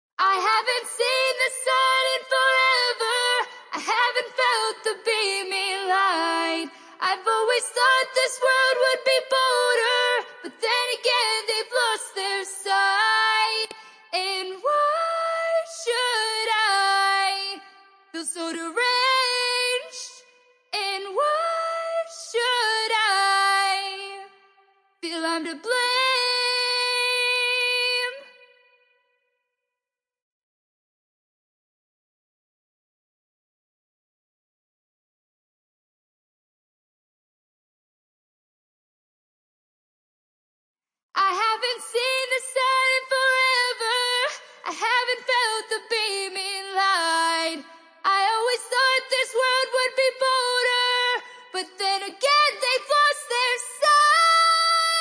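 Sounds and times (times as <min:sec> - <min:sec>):
vocal a cappella in G major: 0:00.2 - 0:24.4, 0:25.0 - 0:28.6, 0:41.2 - 0:54.9.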